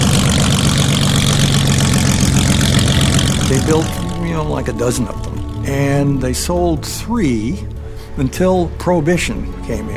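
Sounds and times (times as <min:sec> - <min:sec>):
airplane engine on a flat-bottom sea sled boat roaring in Seattle waters: 0:00.0 - 0:08.8
speech: 0:03.5 - 0:09.9.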